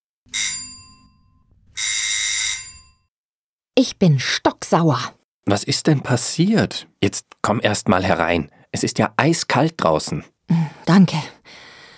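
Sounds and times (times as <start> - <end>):
doorbell ringing at a front door in cold weather: 0.3 - 3.1
speech: 3.8 - 11.6.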